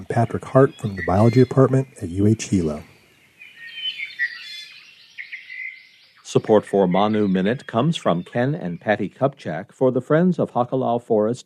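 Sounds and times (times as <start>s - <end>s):
speech: 0.0s - 2.9s, 6.3s - 11.4s
introduced non-native bird singing fast warbling song: 0.0s - 11.4s.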